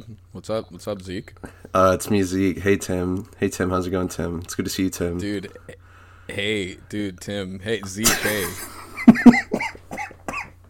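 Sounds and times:
speech: 0:00.0 - 0:09.3
person coughing harshly: 0:08.0 - 0:10.6.

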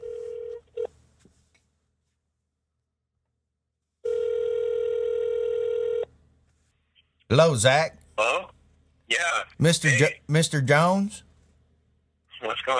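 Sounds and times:
steady telephone ringing tone: 0:00.0 - 0:00.9, 0:04.0 - 0:06.1
telephone dialing tones on a call being placed: 0:04.1 - 0:06.1
speech: 0:07.3 - 0:08.5, 0:09.1 - 0:11.3.

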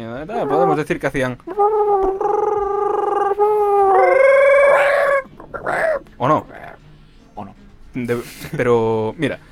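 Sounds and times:
speech: 0:00.2 - 0:02.5, 0:06.2 - 0:06.5, 0:07.9 - 0:09.5
person imitating a dinosaur call: 0:00.3 - 0:00.9, 0:01.5 - 0:06.8.

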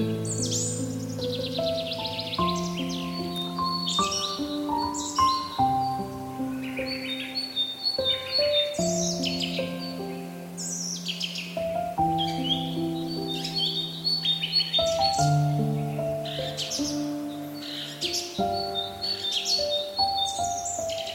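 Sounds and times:
birds chirping: 0:00.0 - 0:21.1
soft piano: 0:00.0 - 0:21.1.

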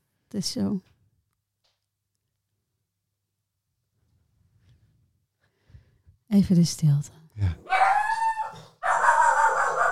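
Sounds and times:
speech: 0:00.3 - 0:00.9, 0:06.4 - 0:07.9
dog giving drawn-out high-pitched vocal calls: 0:07.7 - 0:09.9.

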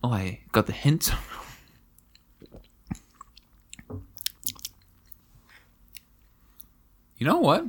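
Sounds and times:
speech: 0:00.0 - 0:01.4, 0:07.2 - 0:07.6
wet gulps: 0:02.0 - 0:05.2
person sipping a drink: 0:02.0 - 0:06.7.

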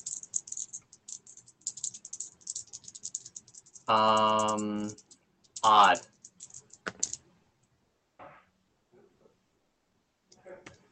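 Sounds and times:
dice including percentile dice rattling during a tabletop roleplaying game: 0:00.0 - 0:07.3
speech: 0:03.9 - 0:05.0, 0:05.6 - 0:06.1.

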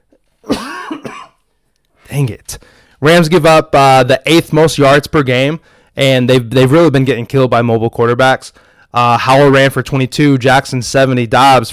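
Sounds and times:
harsh cough: 0:00.4 - 0:01.4
rasping throat clear: 0:00.4 - 0:01.4
speech: 0:02.2 - 0:11.7.

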